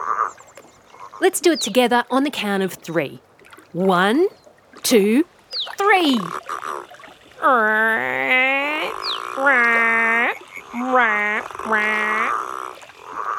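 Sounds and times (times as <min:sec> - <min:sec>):
speech: 0:01.2 - 0:06.5, 0:07.4 - 0:10.0, 0:10.8 - 0:12.4
voice imitating Australian green and gold frog growls: 0:07.4 - 0:13.3.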